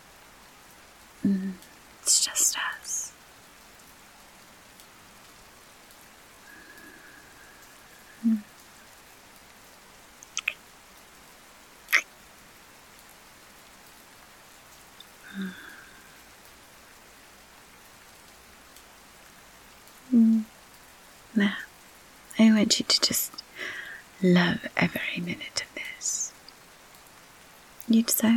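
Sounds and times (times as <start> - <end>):
steady rain pattering on a surface: 0.0 - 28.3
speech: 1.2 - 1.7, 21.4 - 21.6, 22.4 - 23.4, 24.2 - 25.7, 27.9 - 28.3.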